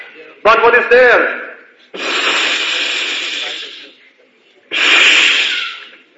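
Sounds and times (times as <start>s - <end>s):
speech: 0.4s - 2.0s
voice making loud hissing sounds imitating snakes: 2.0s - 4.0s, 4.7s - 6.0s.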